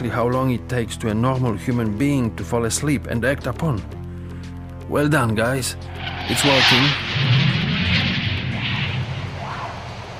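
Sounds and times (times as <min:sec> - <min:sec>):
speech: 0:00.0 - 0:04.0, 0:04.9 - 0:07.4
military airplanes roaring overhead at night: 0:05.8 - 0:10.1.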